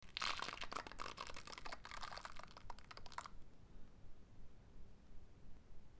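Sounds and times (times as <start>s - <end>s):
crackling: 0.0s - 3.4s.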